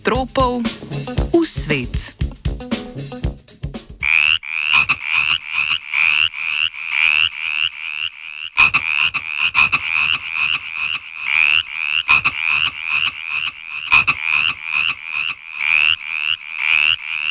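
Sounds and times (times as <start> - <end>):
speech: 0.1 - 0.8, 1.6 - 2.1
chorus of frogs croaking: 4.0 - 17.2.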